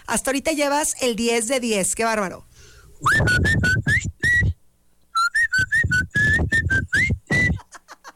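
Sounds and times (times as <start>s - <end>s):
speech: 0.1s - 4.1s
person whistling a lively tune: 3.0s - 4.6s, 5.2s - 7.7s.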